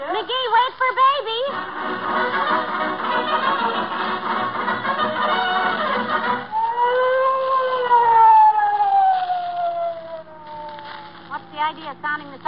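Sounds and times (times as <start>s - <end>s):
dense busy noise: 0.0s - 12.4s
police siren wailing: 4.7s - 12.4s.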